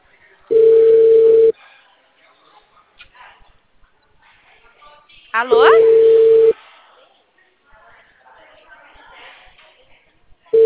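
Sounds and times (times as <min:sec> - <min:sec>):
video call ringing tone: 0:00.5 - 0:01.5, 0:05.5 - 0:06.6
speech: 0:05.4 - 0:05.9.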